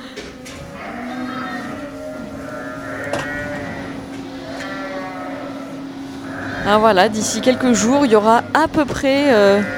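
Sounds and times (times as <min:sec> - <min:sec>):
flock of ewes bleating: 0:00.0 - 0:09.7
steady low hum: 0:00.2 - 0:09.7
speech: 0:06.7 - 0:09.7.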